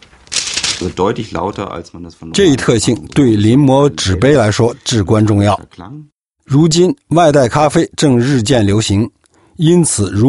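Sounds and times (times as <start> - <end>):
thin PLA plastic film crinkling as it is handled: 0.0 - 1.6
speech: 0.8 - 10.2.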